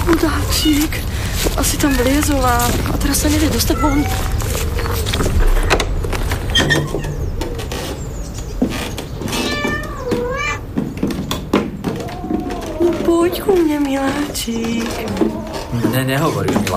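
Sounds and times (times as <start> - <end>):
low rumbling noise: 0.0 - 16.7
rustling: 0.0 - 16.7
speech: 0.1 - 5.8, 13.3 - 16.7
cat meowing in drawn-out rising and falling cries: 3.2 - 5.0, 9.3 - 10.7, 12.0 - 16.6.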